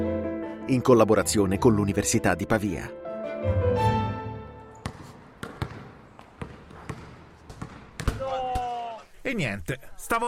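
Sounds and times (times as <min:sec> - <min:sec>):
speech: 0:00.7 - 0:04.0, 0:09.3 - 0:10.2
basketball bouncing on a hard outdoor court: 0:04.8 - 0:08.7.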